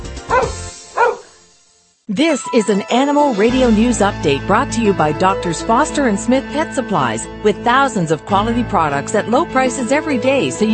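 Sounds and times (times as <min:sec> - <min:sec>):
dog barking: 0:00.3 - 0:01.3
speech: 0:02.1 - 0:10.7.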